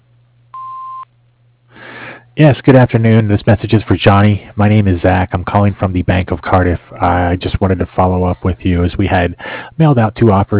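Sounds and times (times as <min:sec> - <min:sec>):
faint constant low hum: 0:00.0 - 0:10.5
answering machine beep: 0:00.6 - 0:01.0
speech: 0:02.4 - 0:10.5.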